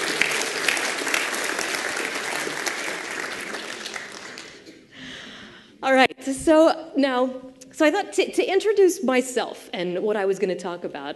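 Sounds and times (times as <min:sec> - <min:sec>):
audience applauding for a presenter: 0:00.0 - 0:04.8
speech: 0:05.8 - 0:11.1.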